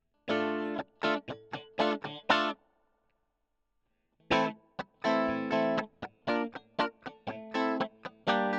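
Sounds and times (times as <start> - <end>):
electric guitar recorded with a Gefell microphone: 0.2 - 2.6, 4.2 - 8.5.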